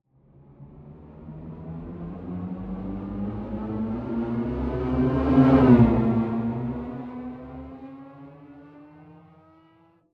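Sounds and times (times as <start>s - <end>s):
abstract spaceship flyby ascending: 2.6s - 8.8s.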